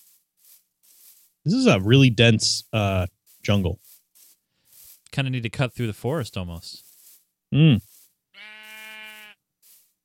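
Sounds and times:
speech: 1.4 - 3.8, 5.1 - 6.9, 7.5 - 8.5
sheep bleating: 8.3 - 9.4.

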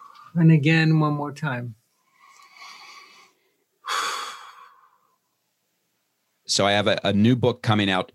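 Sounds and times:
speech: 0.3 - 1.8, 6.5 - 8.1
person inhaling deeply: 2.0 - 5.2
person exhaling breathily: 2.3 - 5.1.

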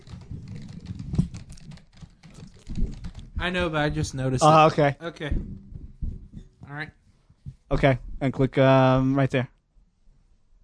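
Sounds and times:
fast typing on a computer keyboard: 0.0 - 3.4
speech: 3.4 - 5.7, 6.7 - 7.0, 7.7 - 9.5.

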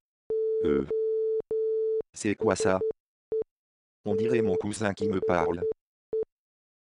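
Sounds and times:
mid-pitched electronic tone beeping Morse code: 0.3 - 3.5, 4.1 - 6.3
speech: 0.6 - 1.0, 2.2 - 2.9, 4.1 - 5.7.

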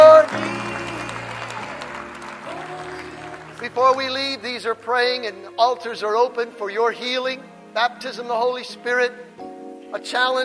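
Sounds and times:
congregation clapping hands in praise at a church service: 0.0 - 5.3
speech: 4.0 - 10.4.

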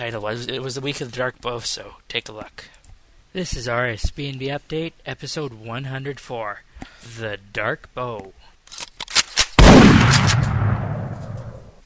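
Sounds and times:
speech: 0.0 - 8.9
double-barrel shotgun blast: 9.6 - 11.7.

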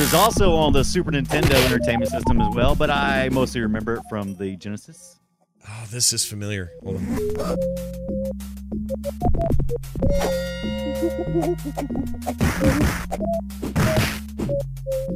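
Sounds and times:
bouncy synthesized game music loop: 0.0 - 4.6, 5.7 - 15.1
speech: 0.1 - 8.2, 8.9 - 15.1
beat-em-up video game hit sound effects: 1.3 - 1.8, 12.3 - 14.5.

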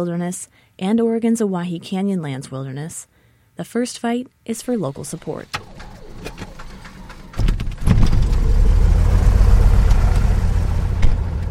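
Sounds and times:
speech: 0.0 - 6.4
small plane engine cranking and starting: 5.0 - 11.4.

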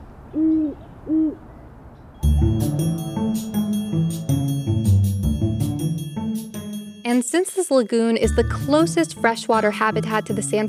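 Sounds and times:
horned owl hooting: 0.4 - 1.4
music: 2.2 - 10.6
speech: 7.7 - 10.6.

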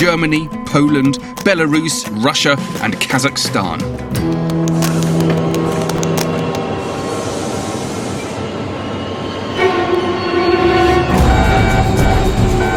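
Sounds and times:
speech: 0.0 - 4.4
heavy cargo train rumbling into a station in China: 4.6 - 12.7
sustained horn-like tones of a cargo train: 5.4 - 8.4, 9.5 - 12.7
shifting metallic squeals of a cargo train: 6.4 - 12.7.

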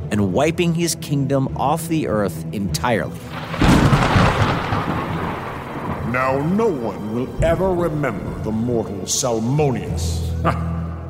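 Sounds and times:
speech: 0.2 - 4.1, 6.1 - 11.0
thunder rumbling from a lightning storm: 3.3 - 9.6.

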